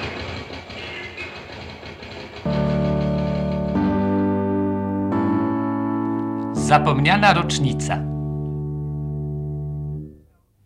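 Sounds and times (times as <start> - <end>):
low zither chord in D major of a radio station interval signal: 2.5 - 10.2
speech: 6.7 - 8.1.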